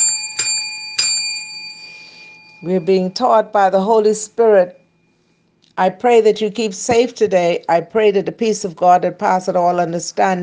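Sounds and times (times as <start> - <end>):
bright bell ringing: 0.0 - 3.6
speech: 2.6 - 4.8, 5.8 - 10.4.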